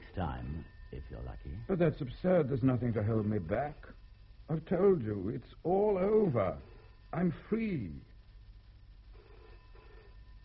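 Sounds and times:
steady low hum and hiss: 0.0s - 10.4s
speech: 0.2s - 8.1s
telephone bell double ring: 9.2s - 10.4s.

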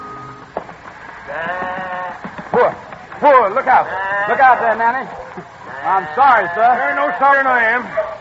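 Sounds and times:
shuffling of sheep: 0.0s - 6.2s
flock of sheep bleating: 1.1s - 2.3s, 3.8s - 4.8s, 5.6s - 7.6s
speech: 1.3s - 1.6s, 2.6s - 8.1s.

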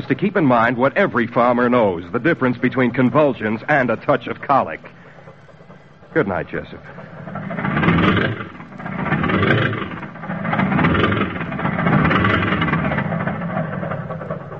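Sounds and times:
speech: 0.0s - 5.0s, 6.1s - 7.2s
car engine revving hard with wheels spinning stuck in sand: 6.8s - 14.5s.

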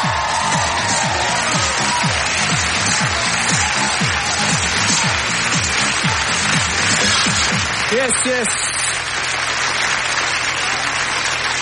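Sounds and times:
audience clapping: 0.0s - 11.6s
speech: 8.0s - 8.5s.

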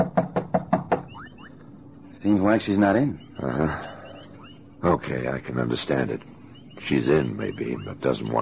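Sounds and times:
firm knocking on a wooden door: 0.0s - 1.1s
faint rising chirps: 1.0s - 8.4s
speech: 2.2s - 3.9s, 4.8s - 8.4s.

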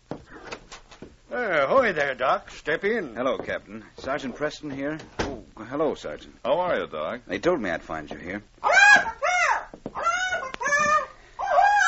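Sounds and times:
speech: 1.3s - 9.2s
pet bird squawking aboard a boat: 8.6s - 11.8s.

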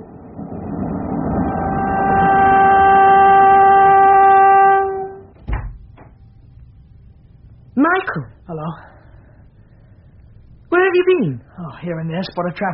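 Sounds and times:
train rushing along with a steady rumble: 0.0s - 6.1s
sustained whistle-like train horn tone: 1.2s - 5.4s
speech: 11.2s - 12.7s.

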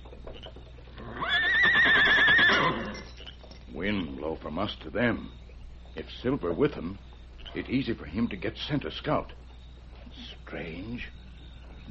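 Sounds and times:
horse whinnying: 1.0s - 3.2s
speech: 4.4s - 5.4s, 6.0s - 9.4s, 10.2s - 11.2s.

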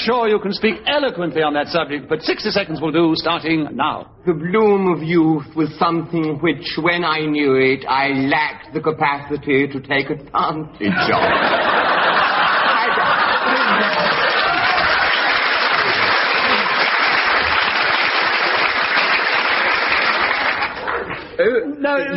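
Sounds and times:
speech: 0.0s - 11.9s, 21.4s - 22.1s
studio audience chuckling: 10.9s - 17.7s
studio audience applause: 11.4s - 21.4s.

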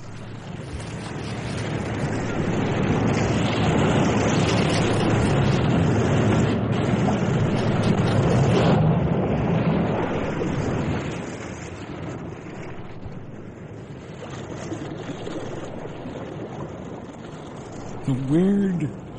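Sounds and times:
heavy sea waves crashing inside a cave by the sea: 0.0s - 19.1s
speech: 18.3s - 19.0s.

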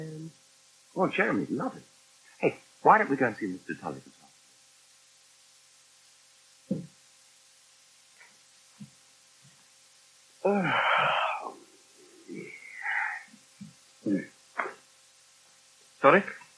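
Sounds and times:
speech: 1.0s - 4.2s, 10.4s - 10.9s, 16.0s - 16.4s
soft low thumps: 6.7s - 7.0s
person yawning: 10.4s - 13.3s.

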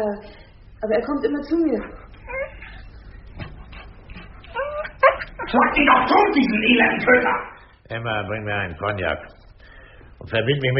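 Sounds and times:
speech: 0.0s - 2.4s, 5.5s - 9.4s, 10.2s - 10.7s
dog whimpering: 1.9s - 3.0s, 3.6s - 5.8s.

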